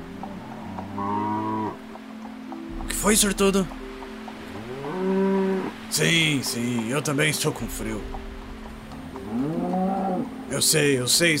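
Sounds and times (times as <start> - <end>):
ox mooing: 0.3 - 1.8, 4.6 - 5.8, 9.0 - 10.4
speech: 3.0 - 3.8, 5.9 - 8.3, 10.5 - 11.3.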